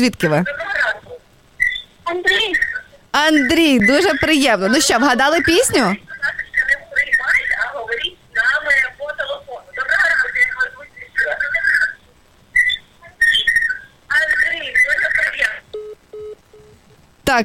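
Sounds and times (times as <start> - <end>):
speech: 0.0 - 0.6, 2.1 - 6.1
voices talking over a phone-like line: 0.0 - 15.8
electronic telephone line tone from a failed call: 15.8 - 16.8.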